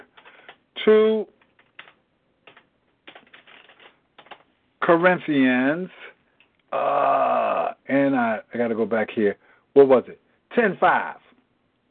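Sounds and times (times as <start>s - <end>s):
speech: 0.8s - 1.4s, 4.9s - 6.1s, 6.7s - 11.2s
computer keyboard typing: 1.4s - 4.4s
vocal sound: 6.7s - 7.9s.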